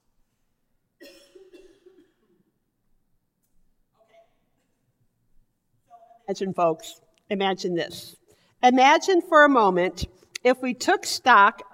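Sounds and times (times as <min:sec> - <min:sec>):
person coughing deliberately as a demonstration: 0:01.0 - 0:02.5
speech: 0:06.3 - 0:11.7.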